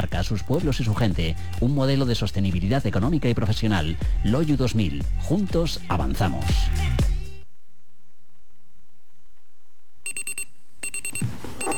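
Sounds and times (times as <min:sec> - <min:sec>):
speech: 0:00.2 - 0:07.1
alarm clock ringing with shrill electronic beeps: 0:10.1 - 0:11.7.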